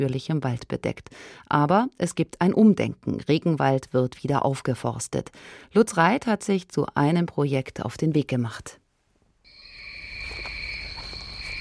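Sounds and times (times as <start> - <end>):
speech: 0.0 - 8.8
cicadas buzzing on a steep rainforest hillside: 9.5 - 11.5.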